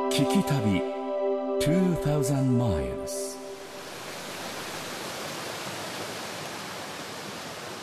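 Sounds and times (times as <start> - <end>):
speech: 0.2 - 0.9, 1.6 - 3.4
waterfall rushing: 3.4 - 7.8.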